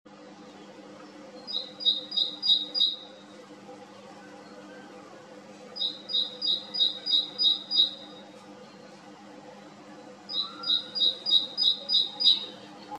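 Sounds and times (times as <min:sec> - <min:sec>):
great tit song: 0:01.3 - 0:03.3, 0:05.8 - 0:08.8, 0:10.2 - 0:12.9.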